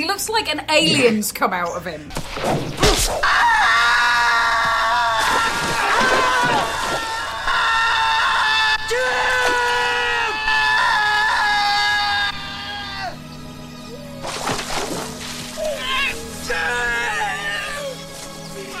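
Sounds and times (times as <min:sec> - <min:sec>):
speech: 0:00.0 - 0:03.6
man screaming in agony after being slashed: 0:03.2 - 0:13.2, 0:15.6 - 0:18.0.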